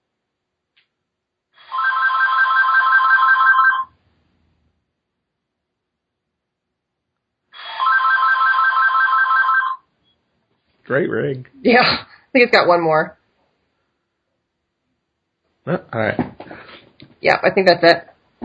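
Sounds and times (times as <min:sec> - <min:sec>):
telephone ringing with a warbling ring: 0:01.6 - 0:04.0, 0:07.6 - 0:09.9
speech: 0:10.9 - 0:13.2, 0:15.7 - 0:16.3, 0:17.2 - 0:18.1.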